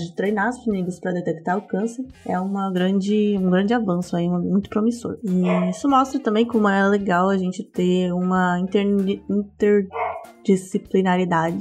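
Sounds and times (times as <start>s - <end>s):
speech: 0.0s - 11.5s
dog barking: 5.4s - 5.8s, 9.9s - 10.3s.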